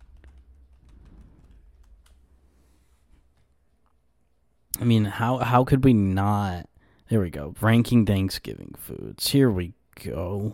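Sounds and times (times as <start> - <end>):
typing on a computer keyboard: 0.0 - 2.3
speech: 4.8 - 10.5.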